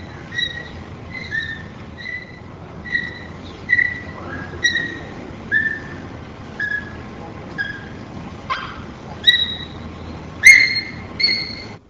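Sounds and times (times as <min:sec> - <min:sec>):
bonobo high-pitched yelps: 0:00.0 - 0:11.8
low steady hiss: 0:00.0 - 0:11.8.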